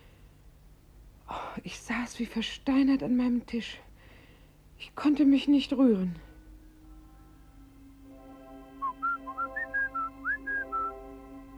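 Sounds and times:
hum: 0.0s - 11.5s
speech: 1.6s - 3.9s, 4.8s - 6.3s
person whistling a tune as a signal: 8.8s - 11.0s.

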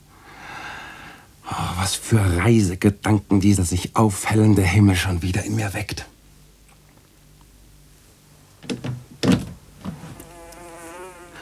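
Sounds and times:
speech: 1.8s - 6.2s
soft bumps: 8.6s - 10.7s
housefly buzzing indoors: 9.8s - 11.4s.

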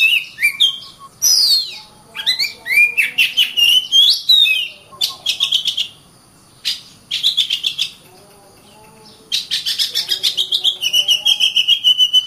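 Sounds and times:
Oriental magpie-robin singing varied whistles and chattering notes: 0.0s - 12.2s.

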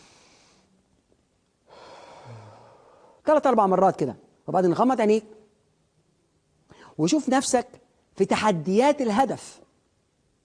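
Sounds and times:
deep breath: 0.0s - 0.7s, 1.7s - 3.2s, 6.7s - 7.0s
speech: 3.3s - 5.4s, 7.0s - 9.6s.

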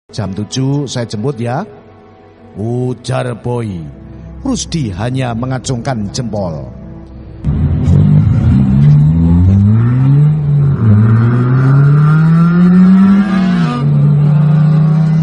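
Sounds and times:
speech: 0.1s - 1.8s, 2.6s - 6.8s
car engine accelerating at night: 7.4s - 15.2s.

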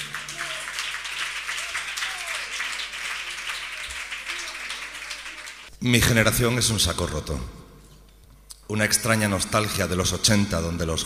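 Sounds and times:
audience applause: 0.0s - 5.7s
speech: 5.8s - 7.6s, 8.7s - 11.0s.

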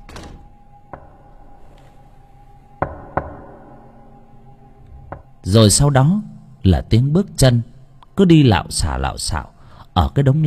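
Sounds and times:
steady low hum: 0.0s - 8.2s
knocking on a door: 2.8s - 3.5s
speech: 5.4s - 10.4s.

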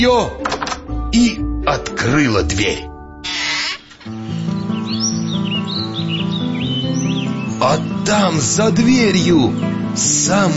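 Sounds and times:
speech: 0.0s - 0.5s, 1.1s - 2.9s, 7.6s - 10.5s
sustained musical backdrop: 0.0s - 10.5s
birds singing on a bright summer day: 3.3s - 10.5s.

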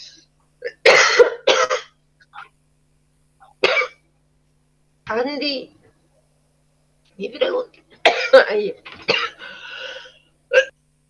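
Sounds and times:
woman coughing: 0.6s - 1.9s, 3.6s - 4.0s, 8.1s - 9.5s, 10.5s - 10.7s
speech: 7.2s - 7.8s, 8.4s - 9.0s.

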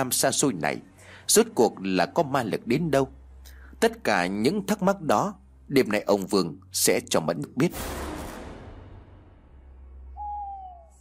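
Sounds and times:
speech: 0.0s - 3.2s, 3.8s - 8.0s
owl hooting in a forest at night: 10.1s - 11.0s.

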